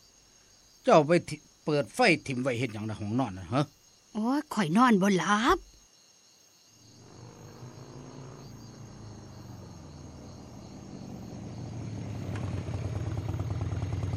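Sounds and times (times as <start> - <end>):
faint chirping insects: 0.0 - 14.1
speech: 0.9 - 5.7
motorcycle engine passing outside at night: 7.0 - 14.1.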